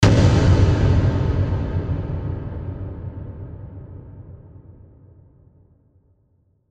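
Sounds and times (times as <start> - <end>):
hit with reverb: 0.0 - 4.9.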